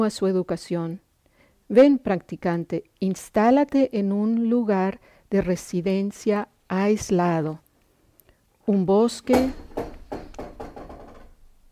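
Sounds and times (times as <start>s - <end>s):
speech: 0.0s - 1.0s, 1.7s - 7.6s, 8.7s - 9.9s
chair knocking and bumping against the floor with hollow wooden thuds: 9.3s - 11.4s.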